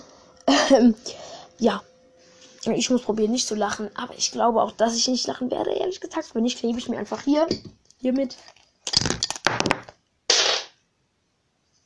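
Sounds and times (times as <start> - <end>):
speech: 0.5 - 1.9, 2.6 - 9.8
recording device falling with clattering thumps and rattles: 8.9 - 10.0.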